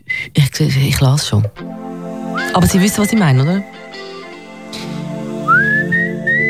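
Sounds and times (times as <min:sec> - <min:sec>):
speech: 0:00.6 - 0:01.8, 0:02.5 - 0:03.7
whistled melody: 0:02.2 - 0:06.4.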